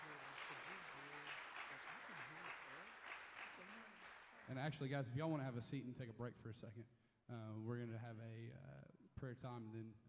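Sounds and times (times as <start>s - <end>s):
crowd applause in a room: 0.0s - 4.6s
speech: 4.5s - 10.0s.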